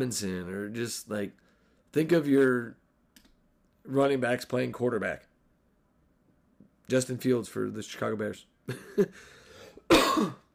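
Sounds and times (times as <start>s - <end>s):
speech: 0.0s - 2.8s, 3.9s - 5.3s, 6.9s - 10.4s
person coughing: 9.7s - 10.5s.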